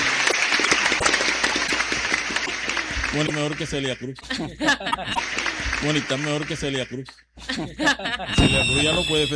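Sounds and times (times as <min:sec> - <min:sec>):
audience applause at a public event in Cartagena: 0:00.0 - 0:03.8, 0:05.2 - 0:06.7
speech: 0:03.1 - 0:09.3.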